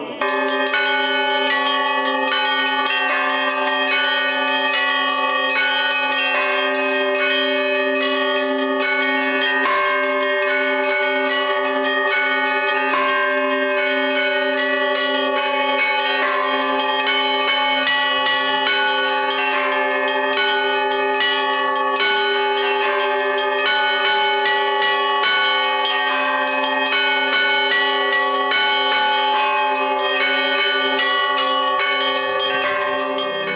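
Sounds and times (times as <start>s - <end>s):
church bells ringing: 0.1s - 33.5s.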